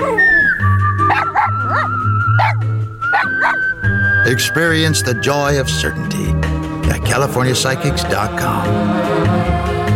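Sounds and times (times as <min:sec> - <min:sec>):
dog yipping and whimpering: 0:00.0 - 0:03.8
speech: 0:04.3 - 0:06.5, 0:07.1 - 0:09.8.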